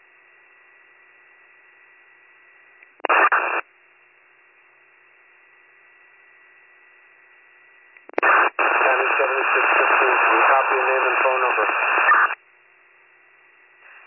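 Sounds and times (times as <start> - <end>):
garbled radio transmission: 3.0 - 3.6, 8.1 - 12.4
radio static hiss: 3.0 - 3.7, 7.7 - 12.4, 13.8 - 14.0
band-limited voice over radio: 8.2 - 12.4.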